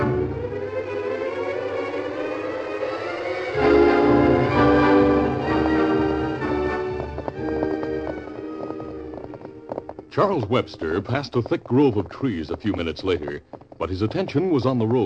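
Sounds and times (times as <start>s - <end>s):
dramatic music: 0.0s - 9.7s
galloping horse hoofbeats on a road: 3.5s - 15.0s
speech: 10.2s - 15.0s.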